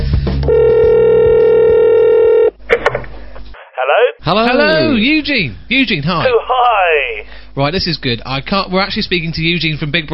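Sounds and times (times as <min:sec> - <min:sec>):
telephone ringing tone over a phone line: 0:00.5 - 0:02.5
speech: 0:04.0 - 0:10.1.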